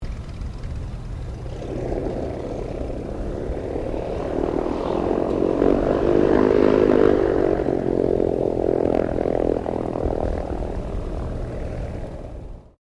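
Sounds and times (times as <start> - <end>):
distant WW2 fighter plane engine shutting down: 0.0 - 12.7.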